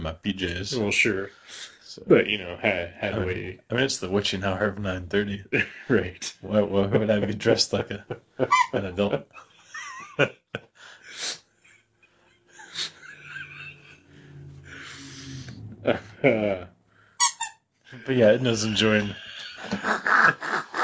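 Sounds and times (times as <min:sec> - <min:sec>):
speech: 0:00.0 - 0:09.5, 0:10.2 - 0:10.6, 0:15.8 - 0:16.7, 0:18.1 - 0:20.6
people laughing: 0:05.2 - 0:11.4, 0:12.4 - 0:15.3, 0:15.9 - 0:16.7, 0:18.0 - 0:20.8
squeaky toy squeaking in high-pitched bursts: 0:08.5 - 0:08.8, 0:17.2 - 0:17.6.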